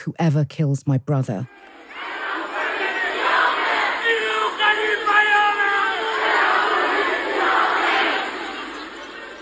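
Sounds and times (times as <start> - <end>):
speech: 0.0 - 1.8
large protest crowd outside a prison in Karaj Iran chanting angrily: 1.5 - 9.3.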